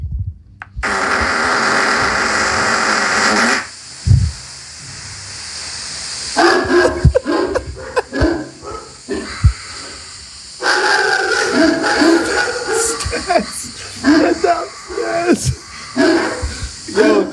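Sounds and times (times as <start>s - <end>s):
long loud hissing blast: 0.8s - 17.3s
dog barking: 6.4s - 9.0s, 10.6s - 13.4s, 15.9s - 17.3s
laughter: 6.5s - 8.6s, 11.4s - 17.3s.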